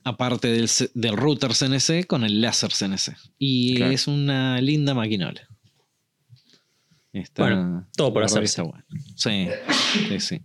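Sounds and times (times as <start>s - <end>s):
speech: 0.0s - 5.5s, 7.1s - 10.4s
single sharp sneeze: 9.5s - 10.2s.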